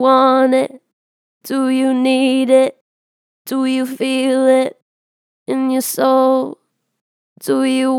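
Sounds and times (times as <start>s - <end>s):
vocals with strong natural vibrato: 0.0s - 0.8s, 1.5s - 2.8s, 3.5s - 4.8s, 5.5s - 6.6s, 7.4s - 7.9s.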